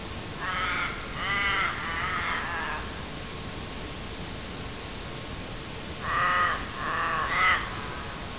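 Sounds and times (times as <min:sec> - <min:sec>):
common raven Corvus corax calling: 0:00.4 - 0:03.0, 0:06.0 - 0:08.2.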